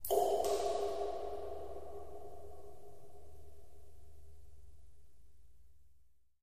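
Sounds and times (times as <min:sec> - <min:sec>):
echoey water dripping in a cave: 0:00.0 - 0:04.5.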